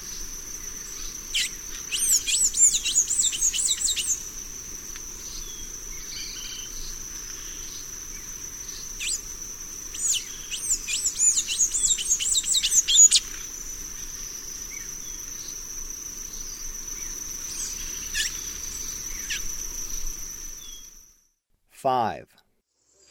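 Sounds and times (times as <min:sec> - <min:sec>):
constant high insect whine: 0:00.0 - 0:21.3
blue-gray tanager giving squeaky twittering high notes in South American eastern lowlands: 0:01.4 - 0:04.2, 0:10.0 - 0:13.3
speech: 0:21.8 - 0:22.3.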